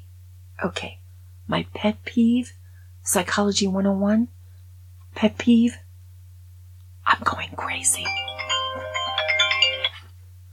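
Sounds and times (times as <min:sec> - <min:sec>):
steady low hum: 0:00.0 - 0:10.5
speech: 0:00.6 - 0:04.4, 0:05.2 - 0:05.8, 0:07.1 - 0:08.3
mobile phone ringtone with electronic melody: 0:08.0 - 0:10.1.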